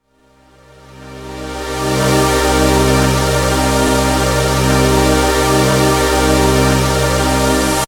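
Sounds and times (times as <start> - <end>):
synth pad: 0.1 - 7.8.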